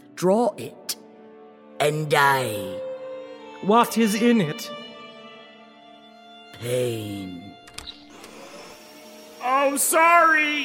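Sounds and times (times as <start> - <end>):
speech: 0.2 - 0.8, 1.8 - 2.9, 3.6 - 4.8, 6.6 - 7.5, 9.4 - 10.6
vacuum cleaner running: 8.1 - 10.6.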